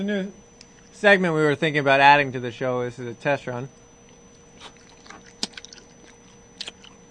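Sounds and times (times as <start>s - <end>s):
speech: 0.0s - 0.4s, 1.0s - 3.8s
chewing gummy bears and chewy granola bar: 4.6s - 7.1s.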